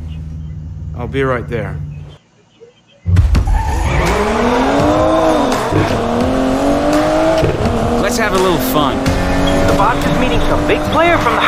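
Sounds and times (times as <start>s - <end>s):
speech: 1.0s - 1.9s, 8.1s - 11.4s
sports car tires squealing and skidding: 3.4s - 11.4s
DB11 sports car engine revving: 3.8s - 11.4s.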